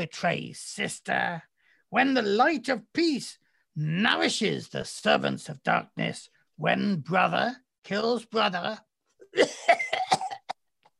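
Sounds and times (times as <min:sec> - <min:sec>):
speech: 0:00.0 - 0:09.8
person coughing harshly: 0:09.2 - 0:10.7.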